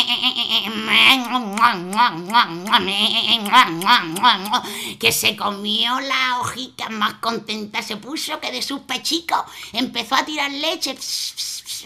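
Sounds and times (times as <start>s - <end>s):
person imitating goat bleating: 0.0s - 4.6s
speech: 0.3s - 11.8s.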